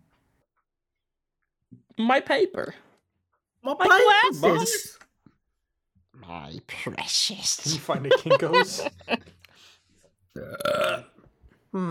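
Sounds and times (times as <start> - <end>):
speech: 2.0 - 2.8, 3.6 - 5.0, 6.3 - 9.4, 10.4 - 11.1
laughter: 7.6 - 9.4
burp: 10.4 - 11.2.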